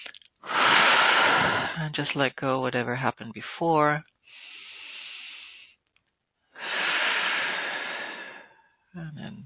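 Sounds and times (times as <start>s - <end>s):
deep breath in and out during a guided relaxation: 0.0s - 1.8s, 4.2s - 5.8s, 6.5s - 8.8s
speech: 1.9s - 4.1s, 9.0s - 9.4s.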